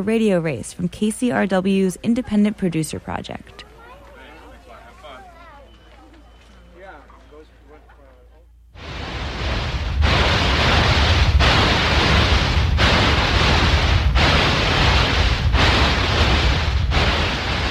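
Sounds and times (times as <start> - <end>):
speech: 0.0 - 3.6
simulated tinnitus broadband hiss: 8.6 - 17.6.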